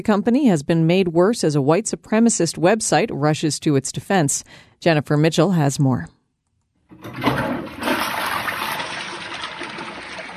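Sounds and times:
speech: 0:00.0 - 0:06.2
toilet flushing a pair of New Balance shoes: 0:06.9 - 0:10.3.

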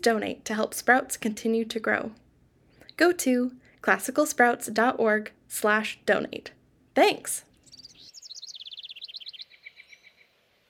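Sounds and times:
speech: 0:00.0 - 0:02.2, 0:03.0 - 0:07.5
bird singing bright high chirps and whistled notes at dawn: 0:07.7 - 0:10.2.

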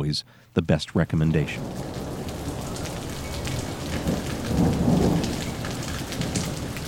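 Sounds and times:
speech: 0:00.0 - 0:01.9
low rumble of thunder: 0:01.4 - 0:06.8
steady heavy rain: 0:01.4 - 0:06.8.

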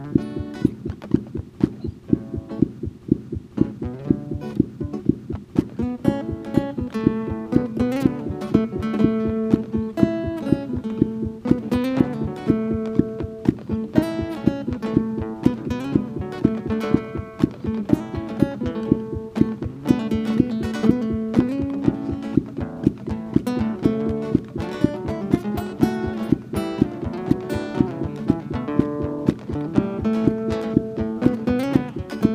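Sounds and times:
fast heartbeat of a young child: 0:00.0 - 0:18.1, 0:18.8 - 0:29.4
plucked guitar notes and chords playing a gentle melody: 0:00.0 - 0:32.3.

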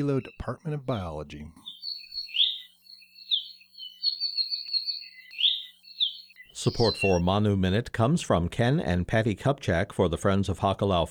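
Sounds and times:
speech: 0:00.0 - 0:01.7, 0:06.6 - 0:11.0
non-native songbird singing in Hawaii's native forests: 0:01.6 - 0:07.3.

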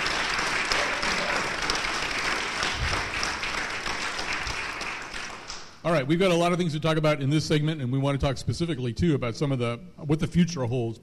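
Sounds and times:
audience applause for a panel in a museum's dinosaur hall: 0:00.0 - 0:05.6
speech: 0:05.8 - 0:11.0.

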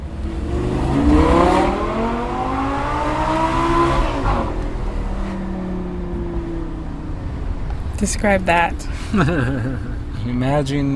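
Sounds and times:
Italian sports car engine revving on a university campus: 0:00.0 - 0:10.9
speech: 0:08.0 - 0:10.9
laughter: 0:09.0 - 0:10.2.

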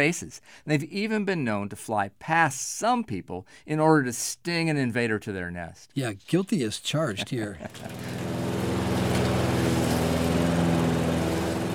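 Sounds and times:
speech: 0:00.0 - 0:08.4
laughter: 0:07.0 - 0:08.1
lawn mower engine running while mowing a yard: 0:07.6 - 0:11.7.

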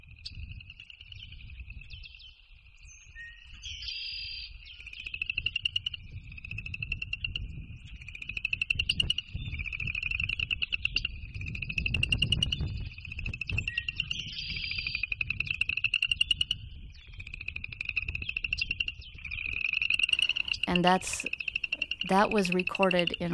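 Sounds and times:
chorus of frogs croaking from a pond: 0:00.1 - 0:02.0, 0:03.6 - 0:23.3
low rumbling frog calls: 0:20.1 - 0:23.3
speech: 0:20.7 - 0:21.4, 0:22.1 - 0:23.3.

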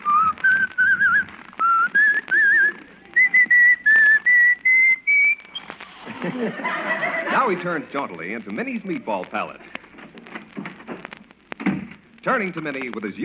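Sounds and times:
man whistling a bright bouncy merry tune: 0:00.0 - 0:05.6
laughter: 0:05.8 - 0:08.0
speech: 0:07.4 - 0:09.8, 0:12.2 - 0:13.2.

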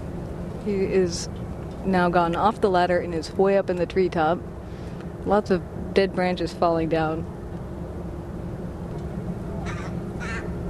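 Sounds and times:
speech: 0:00.6 - 0:04.6, 0:05.2 - 0:07.4
agitated parent bird calling near its nest of chicks in a treetop: 0:09.6 - 0:10.5.

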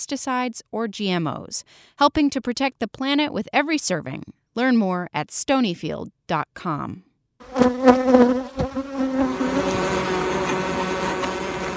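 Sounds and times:
speech: 0:00.0 - 0:08.4
swarm of thousands of honeybees buzzing outside a beekeeper's house: 0:07.4 - 0:11.7.

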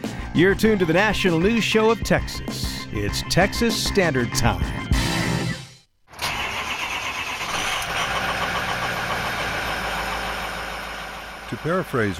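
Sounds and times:
speech: 0:00.4 - 0:04.9, 0:11.6 - 0:12.1
diesel engine starting and idling: 0:06.1 - 0:12.1.

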